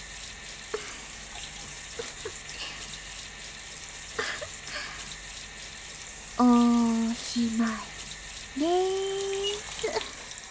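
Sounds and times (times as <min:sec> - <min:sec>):
hot water running from a tap: 0:00.0 - 0:10.4.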